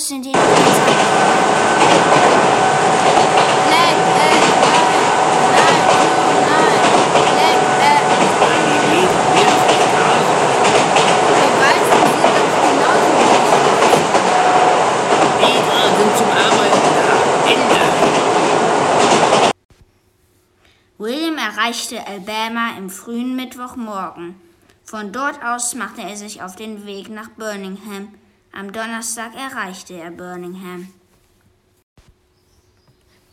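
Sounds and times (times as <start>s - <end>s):
speech: 0.1s - 1.1s, 21.7s - 31.0s
rail carriage rumbling with rattling wheel and track noise during a train ride: 0.3s - 19.6s.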